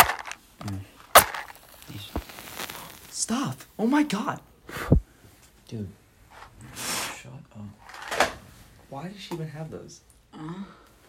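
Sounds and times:
match being struck and lit: 0:00.0 - 0:00.4, 0:01.1 - 0:03.7
soft rustling: 0:01.1 - 0:03.2
speech: 0:03.3 - 0:04.5, 0:05.7 - 0:06.0, 0:09.0 - 0:10.8.

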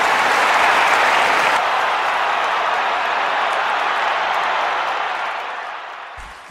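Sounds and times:
large audience applauding a speech: 0:00.0 - 0:06.4.

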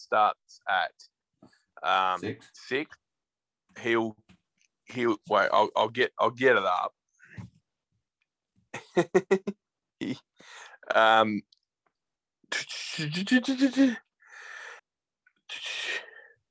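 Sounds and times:
speech: 0:00.0 - 0:03.0, 0:03.8 - 0:04.3, 0:04.9 - 0:07.0, 0:08.7 - 0:11.5, 0:12.5 - 0:14.0
person breathing heavily into microphone: 0:10.4 - 0:10.8, 0:14.2 - 0:14.9.

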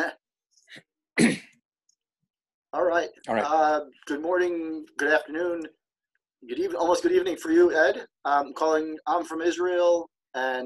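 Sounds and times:
dry coughs: 0:01.2 - 0:01.6
speech: 0:02.7 - 0:05.8, 0:06.4 - 0:10.6.

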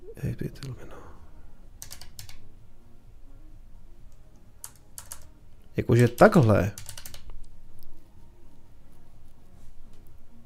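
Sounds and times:
low steady hum: 0:00.0 - 0:10.4
speech: 0:00.2 - 0:01.0, 0:05.8 - 0:06.8
typing on a computer keyboard without a numeric keypad: 0:01.8 - 0:02.4, 0:04.6 - 0:05.3, 0:06.2 - 0:07.3.

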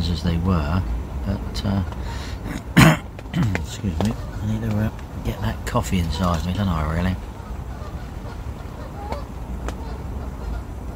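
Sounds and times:
outdoor hiss: 0:00.0 - 0:10.9
speech: 0:00.2 - 0:02.7, 0:03.4 - 0:07.3
Canada geese honking: 0:01.4 - 0:02.8, 0:03.4 - 0:10.9.

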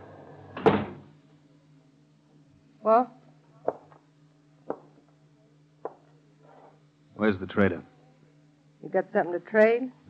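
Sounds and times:
front door of a log cabin trading post swinging open: 0:00.6 - 0:01.0
speech: 0:02.8 - 0:03.2, 0:07.2 - 0:07.9, 0:08.8 - 0:10.0.

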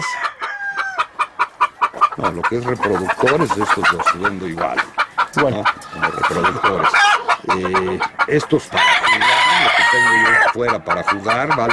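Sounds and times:
rooster crowing: 0:00.0 - 0:01.1, 0:08.7 - 0:10.5
quick rhythmic chicken clucks: 0:00.0 - 0:11.7
speech: 0:02.2 - 0:09.0, 0:09.9 - 0:11.7.

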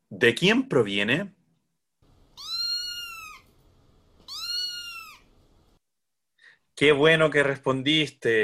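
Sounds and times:
speech: 0:00.1 - 0:01.4, 0:06.8 - 0:08.4
cat meowing: 0:02.3 - 0:03.6, 0:04.2 - 0:05.3.

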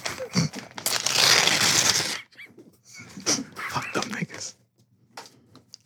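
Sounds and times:
paper bills being ripped up: 0:00.0 - 0:02.3, 0:03.1 - 0:04.5.

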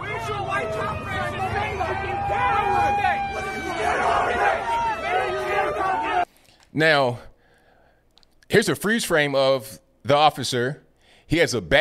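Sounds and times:
angry crowd in a park yelling at a police officer: 0:00.0 - 0:06.3
speech: 0:06.7 - 0:07.3, 0:08.5 - 0:11.8.

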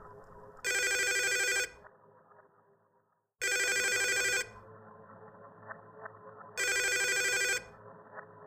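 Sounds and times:
telephone ringing in bright electronic bursts: 0:00.7 - 0:01.7, 0:03.4 - 0:04.5, 0:06.6 - 0:07.6.

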